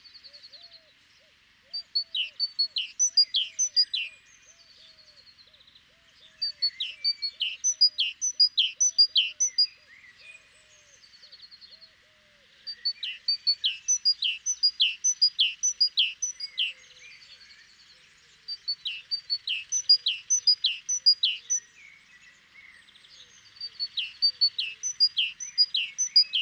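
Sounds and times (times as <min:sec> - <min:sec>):
great tit Parus major calls: 0:01.8 - 0:04.1, 0:06.4 - 0:09.7, 0:12.8 - 0:16.9, 0:18.4 - 0:21.7, 0:23.4 - 0:26.3.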